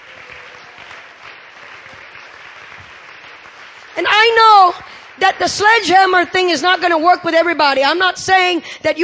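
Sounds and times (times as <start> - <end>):
audience clapping: 0.0 - 6.5
speech: 4.0 - 9.0.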